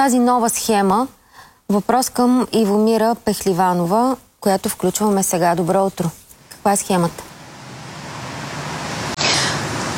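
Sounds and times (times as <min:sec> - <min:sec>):
speech: 0:00.0 - 0:07.3
city centre street traffic near bus stop: 0:06.5 - 0:09.9.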